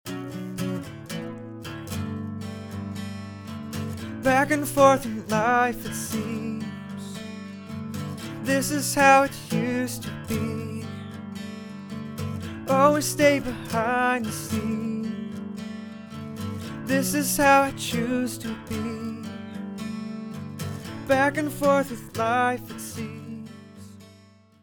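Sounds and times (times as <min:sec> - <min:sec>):
guitar playing dry: 0:00.1 - 0:24.6
person singing dry: 0:04.2 - 0:07.2, 0:08.4 - 0:11.0, 0:12.7 - 0:15.4, 0:16.9 - 0:19.5, 0:21.1 - 0:23.8.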